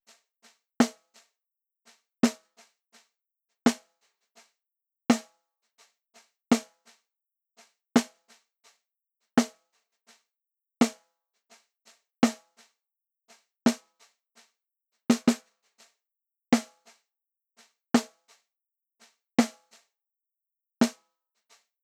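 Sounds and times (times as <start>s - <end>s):
snare drum: 0.8s - 1.2s, 2.2s - 2.5s, 3.7s - 3.9s, 5.1s - 5.3s, 6.5s - 6.9s, 8.0s - 8.4s, 9.4s - 9.6s, 12.2s - 12.6s, 13.7s - 13.9s, 15.1s - 15.6s, 16.6s - 17.0s, 18.0s - 18.3s, 19.4s - 19.8s.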